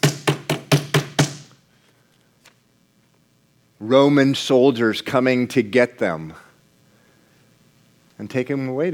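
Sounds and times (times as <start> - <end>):
fist pounding a wooden pulpit: 0.0 - 1.5
speech: 3.8 - 6.4, 8.2 - 8.9.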